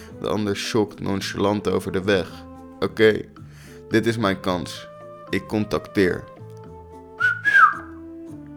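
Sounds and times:
speech: 0.2 - 6.3
person whistling sharply to get someone's attention: 7.2 - 8.1.

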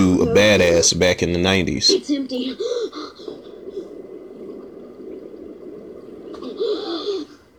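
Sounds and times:
speech: 0.0 - 2.7
heavy labored gasping breaths: 2.6 - 3.7, 6.4 - 7.5.

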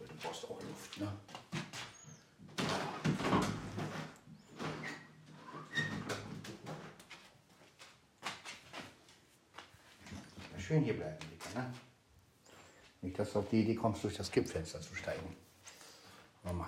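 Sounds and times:
speech: 0.2 - 1.3, 10.7 - 11.9, 13.2 - 15.5
bedroom door being opened: 2.6 - 7.0.

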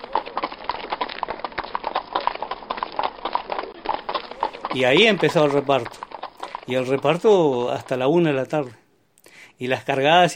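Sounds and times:
horse cart rattling: 0.0 - 8.7
horse hooves clip-clopping on hard ground pulling a cart: 0.0 - 8.9
speech: 4.7 - 6.0, 6.7 - 8.8, 9.6 - 10.3.

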